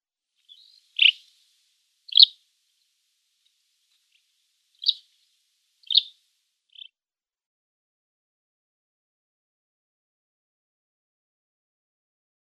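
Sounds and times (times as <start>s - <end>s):
Raso lark calls: 0.5s - 1.2s, 2.1s - 2.3s, 4.8s - 5.0s, 5.8s - 6.1s.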